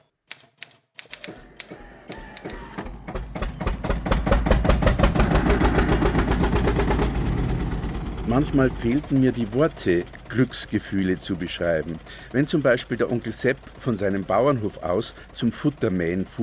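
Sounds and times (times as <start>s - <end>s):
typewriter keys clacking: 0.0s - 2.8s
low mechanical rumble: 2.8s - 16.4s
speech: 8.4s - 16.4s.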